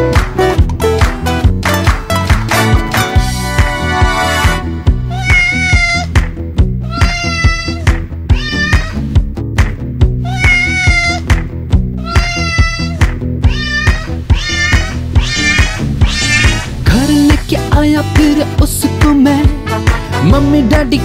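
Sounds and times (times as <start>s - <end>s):
bouncy musical backing with a regular beat: 0.0s - 21.0s
kitten meowing: 5.1s - 6.1s, 6.8s - 9.0s, 10.2s - 11.2s, 12.0s - 16.8s.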